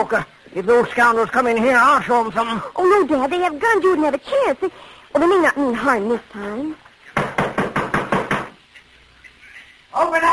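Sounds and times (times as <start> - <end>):
speech: 0.0 - 6.8, 10.0 - 10.3
men pounding on a wooden door: 7.2 - 8.6.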